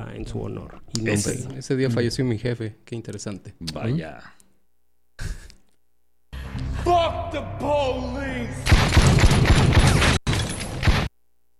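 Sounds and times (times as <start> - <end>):
speech: 0.2 - 4.4, 6.9 - 8.7
rapid gunshot sound effects: 8.6 - 11.1.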